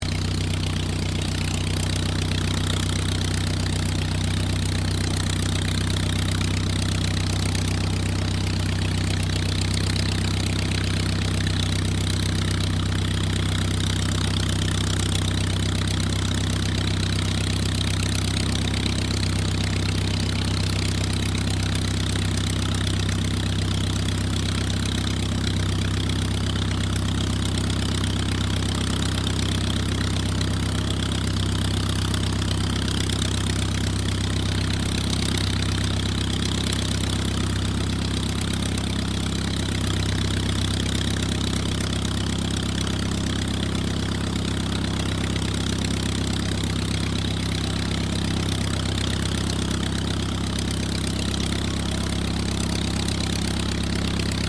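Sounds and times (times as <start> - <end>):
de Havilland DH82A Tiger Moth aircraft engine idling: 0.0 - 54.4.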